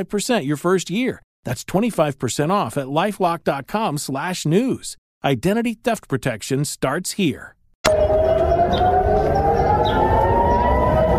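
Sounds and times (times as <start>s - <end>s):
speech: 0.0s - 10.0s
air-raid style rocket warning siren in Israel during rocket attacks: 7.9s - 11.1s.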